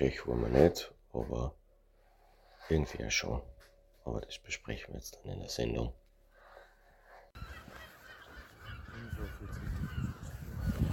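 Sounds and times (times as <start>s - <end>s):
speech: 0.0s - 1.6s, 2.7s - 6.0s
gulls screeching and squawking at dawn in Glasgow: 7.4s - 10.9s.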